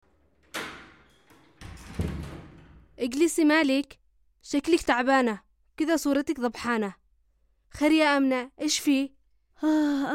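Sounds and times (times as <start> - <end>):
door being opened: 0.2 - 3.0
speech: 3.0 - 7.0, 7.7 - 10.1.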